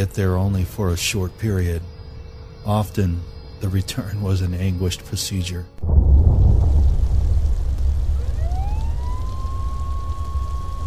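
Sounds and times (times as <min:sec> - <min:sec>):
speech: 0:00.0 - 0:01.9, 0:02.6 - 0:05.9
rising whine holding as a steady tone: 0:05.8 - 0:10.8
steady rain hissing: 0:05.8 - 0:10.8.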